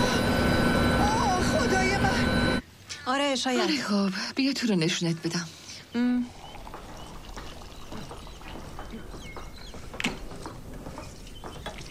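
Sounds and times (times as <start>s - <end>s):
brief tone: 0.0s - 2.6s
speech: 3.1s - 6.4s
house-brewed summer beer pouring from a tap into a glass: 6.2s - 8.9s.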